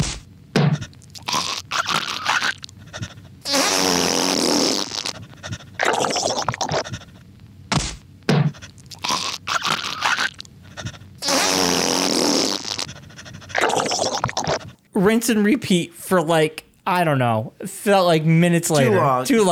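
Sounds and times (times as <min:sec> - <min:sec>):
thumps from someone punching himself: 0:00.0 - 0:00.9, 0:07.7 - 0:08.6
cartoonish fart noises: 0:00.0 - 0:02.7, 0:03.4 - 0:07.1, 0:07.7 - 0:14.8
harsh crunchy throat-hacking sounds: 0:00.0 - 0:14.9
stomps on the ground: 0:07.7 - 0:08.5
speech: 0:15.0 - 0:19.5.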